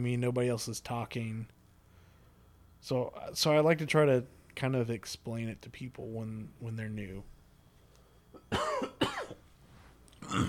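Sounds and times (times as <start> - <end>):
speech: 0.0 - 1.6, 2.8 - 7.3
person clearing throat: 8.4 - 9.4, 10.2 - 10.4.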